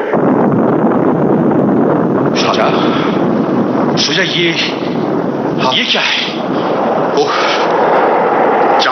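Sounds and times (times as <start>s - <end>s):
British cannons firing: 0.1s - 8.8s
speech: 4.1s - 4.9s, 5.6s - 6.5s, 7.2s - 7.6s.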